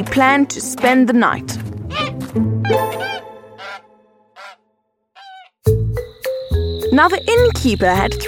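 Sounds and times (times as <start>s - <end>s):
speech: 0.0s - 3.1s, 6.9s - 8.2s
goose honking: 1.9s - 5.6s.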